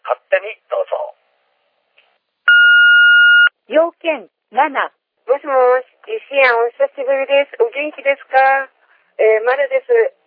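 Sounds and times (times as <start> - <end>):
answering machine beep: 2.5 - 3.5
speech: 4.0 - 10.2.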